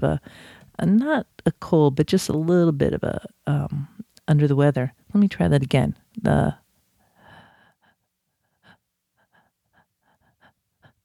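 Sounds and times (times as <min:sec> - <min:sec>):
speech: 0:00.0 - 0:06.6
person demonstrating a fearful breath with a gasp: 0:00.2 - 0:00.8, 0:07.2 - 0:11.0.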